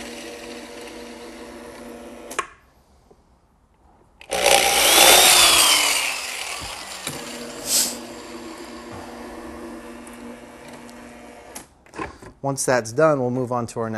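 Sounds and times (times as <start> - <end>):
power drill drilling holes in the hard shell of a helmet: 0.0 - 2.4, 4.2 - 11.7
speech: 12.4 - 13.9.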